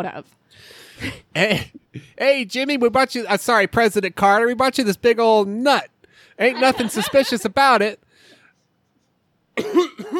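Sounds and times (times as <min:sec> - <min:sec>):
speech: 0:00.0 - 0:08.0, 0:09.6 - 0:09.9
rough throaty coughs: 0:01.0 - 0:02.2, 0:09.6 - 0:10.1
laughter: 0:06.4 - 0:07.7.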